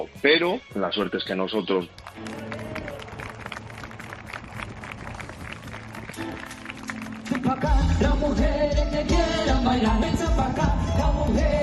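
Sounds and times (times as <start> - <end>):
speech: 0.0 - 2.5, 7.4 - 11.6
crowd applauding at outdoor concert: 1.6 - 7.9
loud live band playing at outdoor concert: 4.8 - 11.6.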